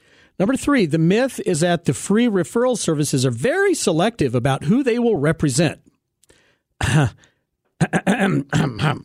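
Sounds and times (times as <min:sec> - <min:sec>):
speech: 0:00.4 - 0:05.9, 0:06.8 - 0:09.0
person clearing throat: 0:06.8 - 0:09.0.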